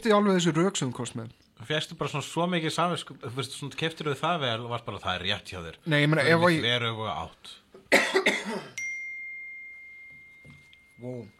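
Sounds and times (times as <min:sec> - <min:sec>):
speech: 0:00.0 - 0:08.8, 0:11.0 - 0:11.3
person coughing: 0:07.9 - 0:08.8
sustained high-pitched ding: 0:08.8 - 0:11.3.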